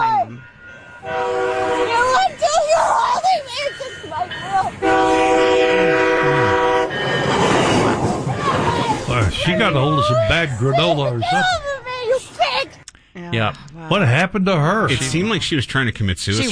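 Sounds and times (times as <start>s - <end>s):
train roaring past: 0.0s - 12.4s
train horn blaring in long loud blasts: 0.3s - 2.4s, 4.8s - 7.9s
voices shouting over the noise: 1.0s - 12.8s
speech: 9.5s - 11.7s, 13.2s - 16.5s.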